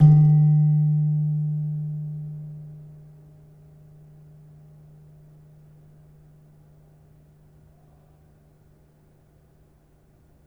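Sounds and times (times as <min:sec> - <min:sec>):
gamelan slentem struck hard: 0:00.0 - 0:03.4.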